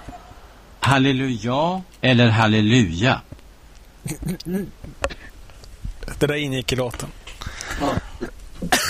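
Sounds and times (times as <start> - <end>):
speech: 0.9 - 3.3, 4.0 - 5.2, 6.1 - 8.8
person coughing harshly: 7.8 - 8.8.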